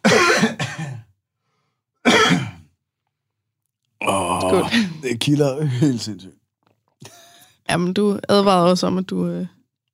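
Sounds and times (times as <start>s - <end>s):
person coughing harshly: 0.0s - 1.1s, 2.0s - 2.7s
speech: 4.4s - 6.4s, 7.7s - 9.6s.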